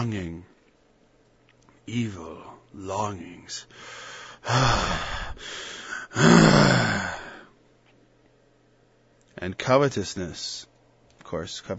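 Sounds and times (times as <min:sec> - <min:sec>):
speech: 0:00.0 - 0:00.5, 0:01.9 - 0:07.2, 0:09.4 - 0:10.7, 0:11.3 - 0:11.7
voice imitating heavy breathing: 0:04.4 - 0:07.5.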